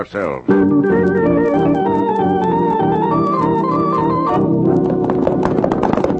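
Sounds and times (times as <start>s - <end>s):
speech: 0.0s - 1.8s
orchestral music: 0.5s - 5.4s
horses' hooves galloping: 0.8s - 6.1s.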